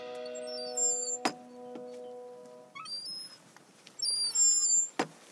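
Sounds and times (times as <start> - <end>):
faint outdoor birdsong: 0.2 - 5.3
squeaky kissing gate swinging open on the Cumbria Way by a lake: 0.2 - 5.3.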